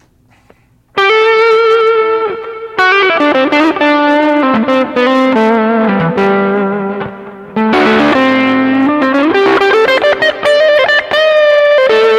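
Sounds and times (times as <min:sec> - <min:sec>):
electric guitar through distortion pedal at low gain: 0:01.0 - 0:12.1.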